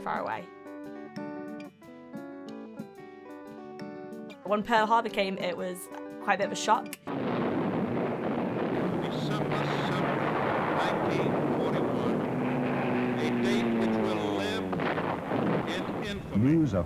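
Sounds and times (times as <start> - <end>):
speech: 0.0 - 0.6, 4.5 - 7.2, 16.4 - 16.8
rushing wind-like noise: 7.1 - 16.8
Japanese propeller aircraft engines droning overhead during the bombing of Manila: 9.0 - 15.7.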